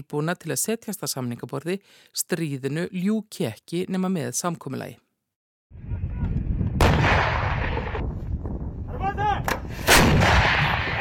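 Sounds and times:
speech: 0.0s - 5.1s
heavy artillery booms and explosions shelling the front line in Donetsk: 5.8s - 8.9s, 9.6s - 10.9s.

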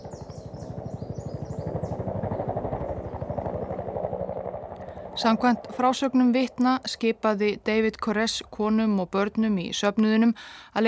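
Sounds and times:
faint bird chirps: 0.0s - 3.8s
helicopter rotor thumping while hovering: 0.0s - 8.8s
speech: 5.2s - 10.8s.

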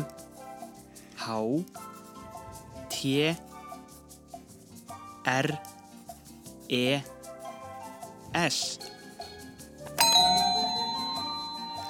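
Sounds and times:
speech: 1.3s - 1.8s, 3.0s - 3.5s, 5.2s - 5.7s, 6.7s - 7.1s, 8.3s - 9.0s
quiz answer bell ringing: 10.0s - 11.8s.

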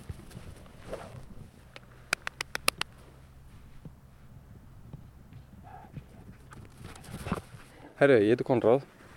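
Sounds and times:
low outdoor rumble in Flateyri Iceland: 0.0s - 8.2s
Border Collie avalanche search dog paws running: 6.0s - 7.8s
speech: 8.0s - 9.0s.

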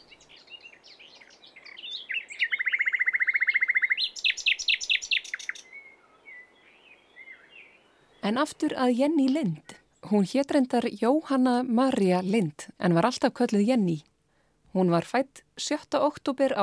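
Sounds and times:
nightingale singing: 0.0s - 10.6s
speech: 8.3s - 14.1s, 14.8s - 16.6s.

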